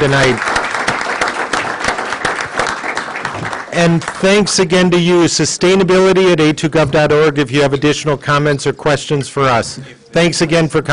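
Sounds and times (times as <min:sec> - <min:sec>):
speech: 0:00.0 - 0:00.5, 0:03.8 - 0:10.9
audience applauding panelists at a public panel meeting: 0:00.0 - 0:04.2.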